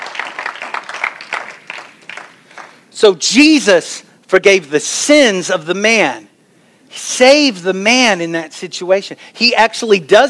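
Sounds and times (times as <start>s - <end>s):
church congregation clapping hands: 0.0s - 2.8s
speech: 3.0s - 6.3s, 6.9s - 10.2s.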